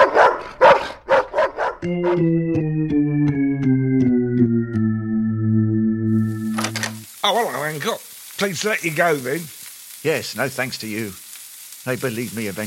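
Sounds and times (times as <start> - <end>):
dog barking: 0.0 - 1.8
speech: 1.8 - 3.4, 7.3 - 11.2, 11.8 - 12.6
slow descending musical passage: 1.8 - 7.2.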